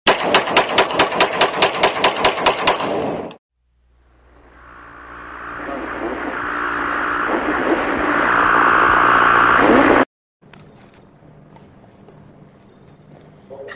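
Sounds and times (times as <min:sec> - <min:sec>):
rapid automatic gunfire from a video game: 0:00.1 - 0:03.1
low rumbling noise: 0:03.6 - 0:10.1.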